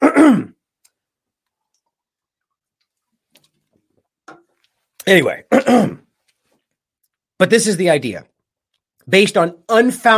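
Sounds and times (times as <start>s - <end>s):
throat clearing: 0.0s - 0.6s, 5.5s - 6.1s
speech: 5.1s - 6.0s, 7.4s - 8.3s, 9.0s - 10.1s.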